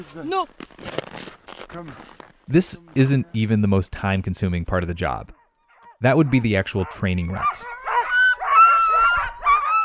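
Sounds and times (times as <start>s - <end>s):
speech: 0.0s - 1.0s, 1.7s - 5.4s, 6.0s - 7.8s
pack of excited sled dogs barking and yelping before a training run: 5.3s - 9.8s.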